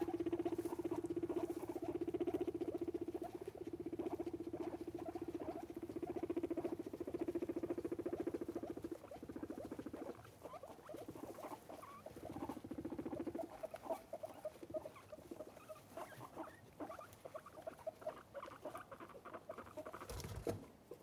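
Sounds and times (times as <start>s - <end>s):
guinea pigs making very strange noises: 0.0s - 21.0s.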